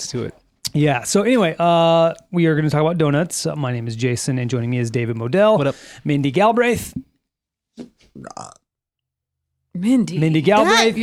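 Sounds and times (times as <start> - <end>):
speech: 0.0 - 7.1, 7.8 - 8.6, 9.8 - 11.0
loud drawn-out burp: 7.8 - 8.7.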